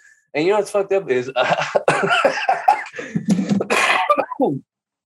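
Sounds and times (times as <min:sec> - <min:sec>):
speech: 0:00.4 - 0:02.6
laughter: 0:01.4 - 0:03.8
smoker's rough raspy hacking coughing fit: 0:03.6 - 0:04.6.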